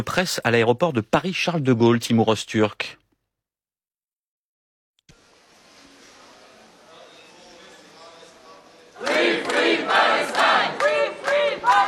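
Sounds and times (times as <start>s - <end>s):
speech: 0.0s - 3.0s
crowd clapping: 9.0s - 11.8s.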